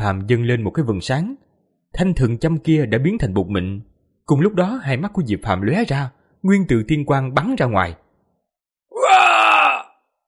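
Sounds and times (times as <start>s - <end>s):
speech: 0.0s - 8.0s
agonized scream from an ambusher being destroyed: 8.9s - 10.0s.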